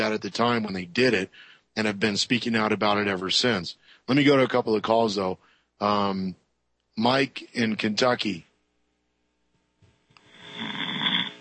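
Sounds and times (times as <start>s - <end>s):
speech: 0.0s - 6.4s, 7.0s - 8.5s
sleeping caller snoring over a phone call: 10.2s - 11.4s.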